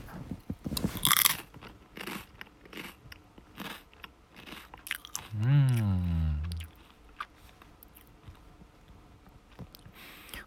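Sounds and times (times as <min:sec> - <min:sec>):
ASMR crunching and chewing of snack food on a bed: 0:00.8 - 0:10.0
person giving a brief voiced hum or murmur: 0:05.3 - 0:06.7.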